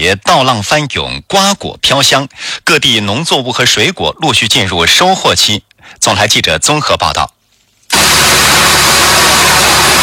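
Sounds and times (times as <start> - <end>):
speech: 0.0 - 8.7
combine harvester cutting, threshing and loading in a ratoon rice field: 7.9 - 10.0.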